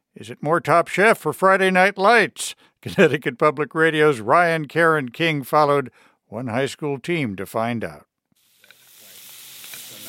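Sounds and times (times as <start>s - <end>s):
speech: 0.2s - 8.1s
laughter: 2.8s - 3.4s
scallops sizzling in butter in a pan: 8.4s - 10.0s.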